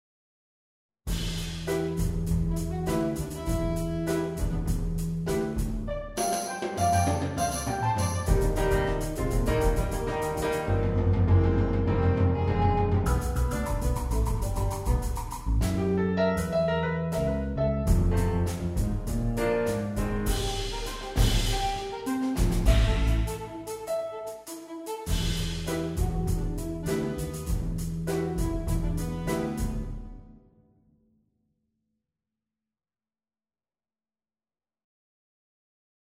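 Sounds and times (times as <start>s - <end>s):
orchestral medley: 1.6s - 30.3s.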